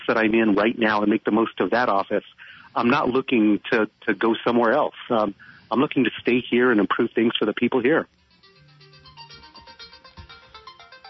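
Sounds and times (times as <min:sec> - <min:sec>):
speech: 0:00.1 - 0:08.2
phone ringtone with repeating electronic melody: 0:08.3 - 0:11.0.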